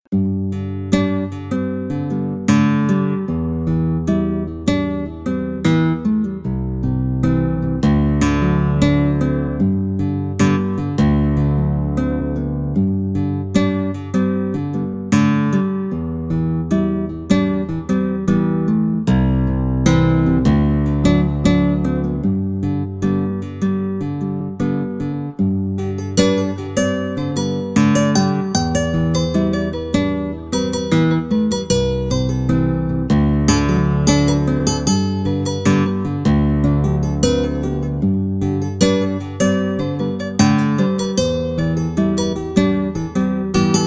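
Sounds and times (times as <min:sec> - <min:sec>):
Hawaiian guitar tuned to 432 Hz: 0:00.2 - 0:43.8.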